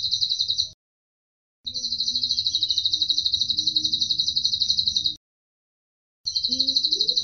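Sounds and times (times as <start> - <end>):
Atlantic canary singing rattling trills in cililin style: 0.0 - 0.8, 1.7 - 5.2, 6.3 - 7.2.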